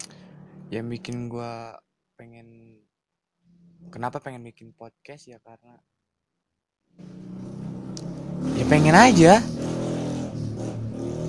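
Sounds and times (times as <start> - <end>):
motorcycle engine revving as it passes: 0.0 - 1.4, 7.0 - 11.2
speech: 0.7 - 2.9, 3.8 - 5.9, 8.4 - 9.6.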